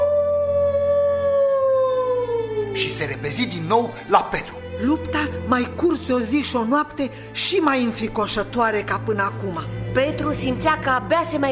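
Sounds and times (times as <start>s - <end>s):
creature howling like a wolf: 0.0s - 3.2s
speech: 2.8s - 11.5s.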